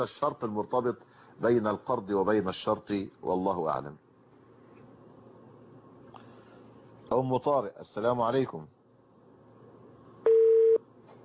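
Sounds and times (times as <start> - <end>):
speech: 0.0 - 4.0, 7.1 - 8.8
faint hiss: 0.0 - 11.2
phone busy tone after a call is cut off: 10.3 - 10.8.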